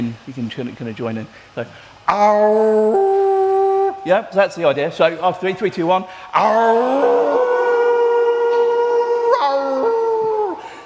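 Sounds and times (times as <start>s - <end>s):
speech: 0.0s - 3.2s, 4.0s - 7.1s
several human voices howling together imitating a wolf or dog: 2.1s - 4.0s, 6.4s - 10.6s.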